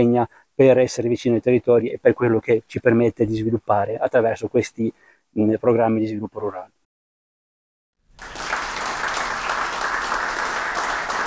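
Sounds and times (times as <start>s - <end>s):
speech: 0.0s - 6.8s
applause from a sizable audience: 8.1s - 11.2s.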